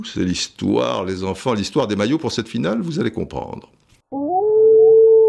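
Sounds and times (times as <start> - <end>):
speech: 0.2 - 3.8
wolf howl used as a jingle: 4.2 - 5.2.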